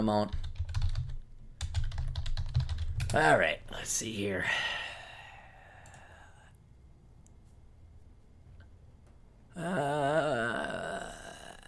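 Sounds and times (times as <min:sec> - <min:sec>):
speech: 0:00.0 - 0:00.4, 0:03.1 - 0:04.8, 0:09.6 - 0:10.9
typing on a computer keyboard: 0:00.2 - 0:03.2.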